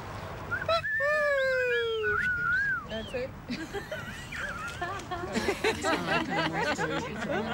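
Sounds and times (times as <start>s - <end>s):
people whistling: 0.5s - 3.3s
laughter: 3.5s - 7.5s.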